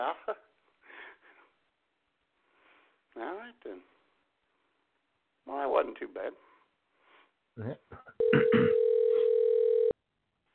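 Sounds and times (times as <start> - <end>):
speech: 5.8 - 6.5, 7.6 - 8.8
telephone tone as a call is dialed: 8.2 - 10.0.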